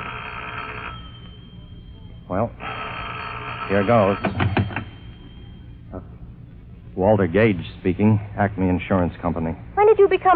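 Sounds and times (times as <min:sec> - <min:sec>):
telephone bell ringing: 0:00.0 - 0:05.8
speech: 0:02.3 - 0:02.7, 0:03.7 - 0:04.6, 0:07.0 - 0:10.3.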